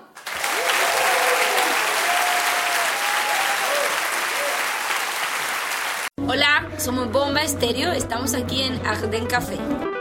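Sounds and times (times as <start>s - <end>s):
large concert audience applauding: 0.2s - 6.1s
faint cheers: 0.4s - 5.2s
speech: 6.9s - 9.9s.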